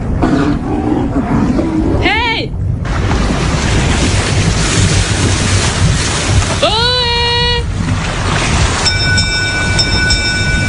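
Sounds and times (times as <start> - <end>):
boat engine rumbling: 0.0 - 10.6
water splashing: 2.8 - 10.6.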